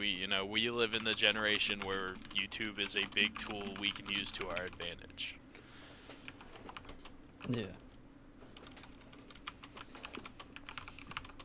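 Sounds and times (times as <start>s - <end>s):
speech: 0.0s - 5.4s, 7.5s - 7.8s
faint low hum: 0.0s - 11.4s
typing on a computer keyboard: 0.9s - 4.9s, 6.3s - 7.6s, 8.6s - 11.4s.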